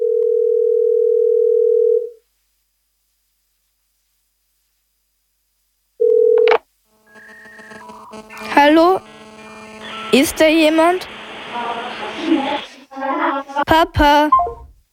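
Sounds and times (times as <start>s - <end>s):
phone ringing tone on speakerphone: 0.0s - 2.2s, 6.0s - 11.4s
faint electronic noise: 1.7s - 14.9s
speech: 10.1s - 11.2s, 13.0s - 14.4s.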